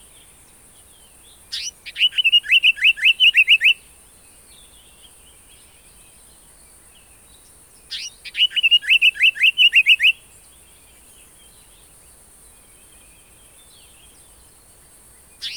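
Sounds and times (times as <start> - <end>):
African paradise flycatcher calls: 1.5 - 3.9, 7.9 - 10.2, 15.4 - 15.5.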